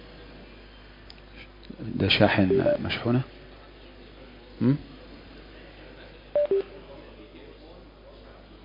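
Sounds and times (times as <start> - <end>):
speech: 1.8 - 3.4, 4.6 - 4.9
short electronic telephone tones over a phone line: 2.5 - 2.9, 6.4 - 6.7.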